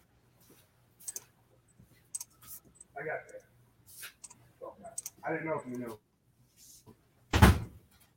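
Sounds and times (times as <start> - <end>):
speech: 3.0 - 3.5, 5.2 - 6.1
door swinging shut with a solid thud: 7.3 - 7.7.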